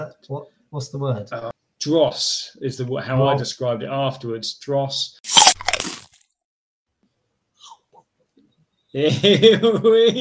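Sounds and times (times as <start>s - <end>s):
speech: 0.0s - 5.4s, 8.9s - 10.1s
loud crunchy bite: 5.2s - 6.3s.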